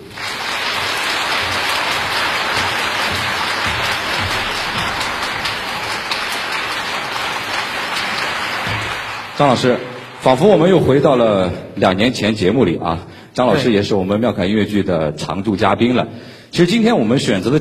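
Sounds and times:
large audience applause: 0.0 - 11.3
speech: 9.4 - 17.5.

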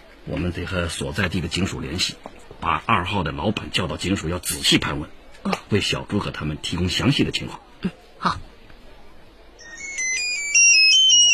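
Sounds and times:
speech: 0.2 - 8.5
mobile phone ringtone with bright electronic melody: 9.6 - 11.3.

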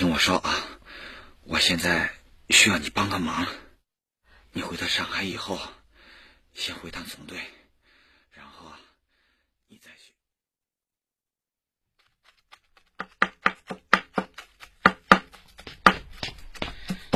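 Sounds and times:
speech: 0.0 - 0.7, 1.5 - 3.6, 4.5 - 5.8, 6.6 - 7.6
faint breath: 0.7 - 1.4, 5.9 - 6.5, 7.6 - 9.6
knife chopping vegetables on a cutting board: 12.0 - 17.1.

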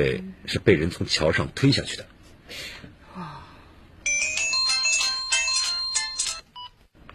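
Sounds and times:
speech: 0.0 - 3.3
loud electronic phone ringtone with bright melodic pattern: 4.0 - 6.7.

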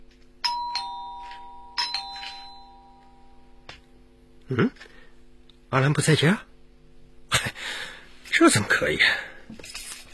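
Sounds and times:
electronic doorbell ding-dong: 0.4 - 3.7
speech: 4.5 - 4.9, 5.7 - 6.5, 8.4 - 9.6.

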